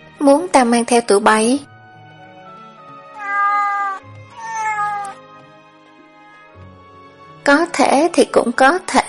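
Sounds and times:
speech: 0.2 - 1.7, 7.5 - 9.0
sand cats meowing: 3.0 - 5.2, 6.0 - 6.6.

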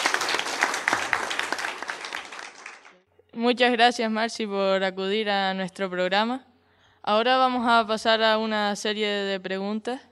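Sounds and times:
audience applause greeting a town mayor: 0.0 - 3.0
speech: 3.4 - 6.5, 7.1 - 10.1.

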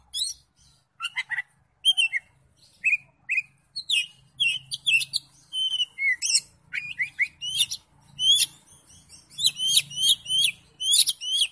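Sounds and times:
Oriental magpie-robin song with whistled phrases and scratchy bursts: 0.0 - 11.4.

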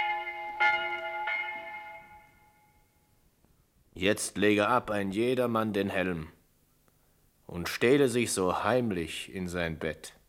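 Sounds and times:
church bell ringing: 0.0 - 3.1
speech: 4.0 - 6.4, 7.5 - 10.2.

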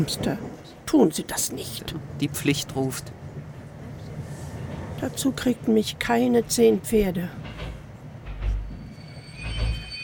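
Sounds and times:
speech: 0.0 - 3.3, 5.0 - 7.7
low rumble of train wheels and carriages: 1.6 - 10.0
train brakes squealing as the train slows and stops: 8.6 - 10.0.

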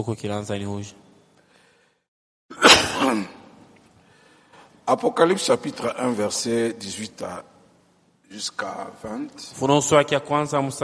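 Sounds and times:
speech: 0.0 - 1.0, 4.9 - 7.5, 8.3 - 10.8
single short cough: 2.5 - 3.6.

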